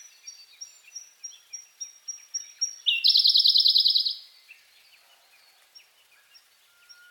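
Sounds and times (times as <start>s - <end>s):
Siberian blue robin ticking and trilling: 2.2s - 4.2s.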